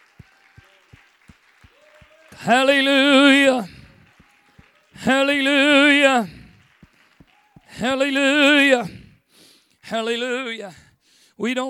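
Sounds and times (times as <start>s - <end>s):
congregation clapping hands in a steady rhythm: 0.0s - 9.2s
speech: 2.4s - 3.7s, 5.0s - 6.4s, 7.8s - 9.0s, 9.9s - 10.8s, 11.4s - 11.6s.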